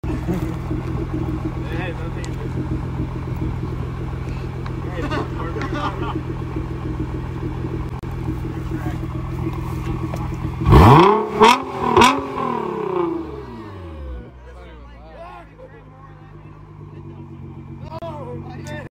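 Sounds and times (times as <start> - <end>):
Nissan GT-R exhaust: 0.0 - 14.6, 15.8 - 18.9
laughter: 4.8 - 6.4.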